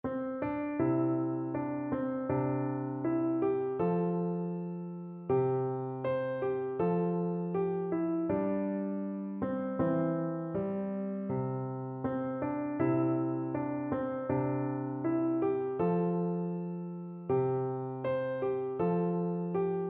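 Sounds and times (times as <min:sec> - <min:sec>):
piano folk tune: 0:00.0 - 0:19.8.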